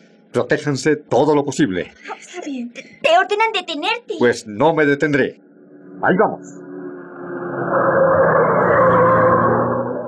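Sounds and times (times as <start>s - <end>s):
speech: 0.4s - 5.4s, 6.0s - 6.6s
small car engine racing at full throttle: 4.6s - 10.0s.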